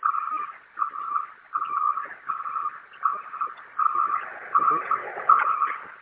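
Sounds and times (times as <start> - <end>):
bus wheelchair ramp warning beeper: 0.0 - 6.0
faint mechanical hum of bus wheelchair ramp deploying: 0.0 - 6.0.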